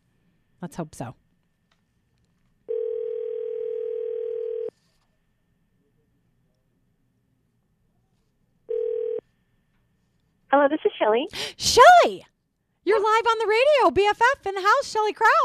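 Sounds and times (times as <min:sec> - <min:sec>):
faint low hum: 0:00.0 - 0:15.4
speech: 0:00.6 - 0:01.2, 0:10.6 - 0:15.4
telephone ringback tone of outgoing call: 0:02.7 - 0:04.7, 0:08.7 - 0:09.2.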